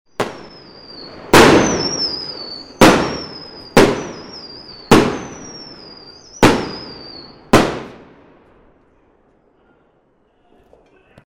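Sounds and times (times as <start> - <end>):
fireworks whistling: 0.1 - 8.2
fireworks bangs: 0.1 - 9.3.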